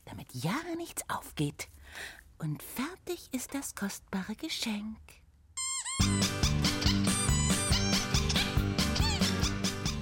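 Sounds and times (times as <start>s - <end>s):
speech: 0.3s - 5.2s
rubber duck squeaking: 5.6s - 10.0s
loud bouncy music with a steady beat: 6.0s - 10.0s.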